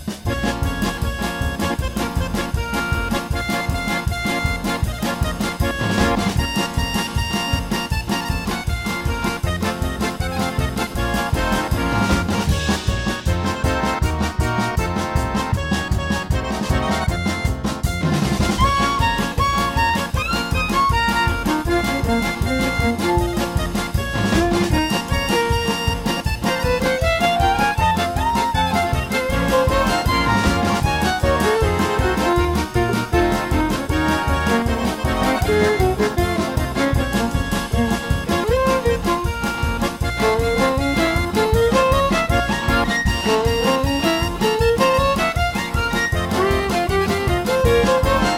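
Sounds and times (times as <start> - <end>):
klezmer tune on B-flat cornet: 0.2 - 48.3.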